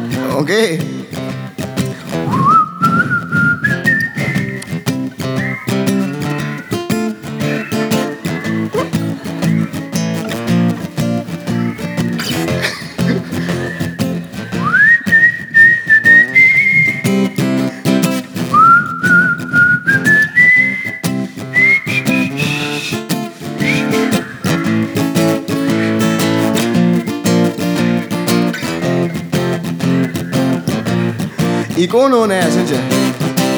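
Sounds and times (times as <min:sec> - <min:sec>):
speech: 0:00.4 - 0:01.3, 0:31.9 - 0:32.9
several people whistling a melody together: 0:02.2 - 0:06.8, 0:13.4 - 0:17.9, 0:18.5 - 0:24.8
laughter: 0:04.2 - 0:14.7, 0:16.9 - 0:18.2, 0:22.3 - 0:33.1.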